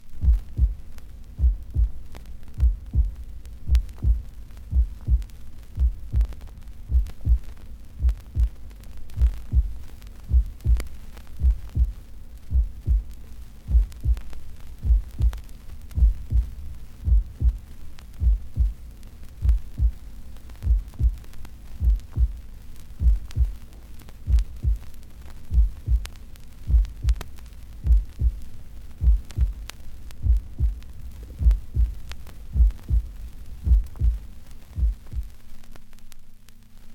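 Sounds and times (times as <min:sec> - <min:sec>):
vinyl crackle: 0:00.0 - 0:36.9
human heartbeats on vinyl: 0:00.2 - 0:02.0, 0:02.6 - 0:08.6, 0:09.2 - 0:17.6, 0:18.2 - 0:18.8, 0:19.4 - 0:20.0, 0:20.6 - 0:22.4, 0:23.0 - 0:23.6, 0:24.3 - 0:24.9, 0:25.5 - 0:28.4, 0:29.0 - 0:29.6, 0:30.2 - 0:35.4.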